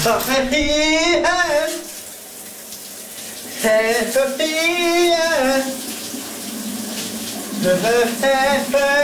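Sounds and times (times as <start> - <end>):
man singing in the shower: 0.0 - 2.0, 3.6 - 5.8, 7.6 - 9.0
shower water running: 0.0 - 9.0.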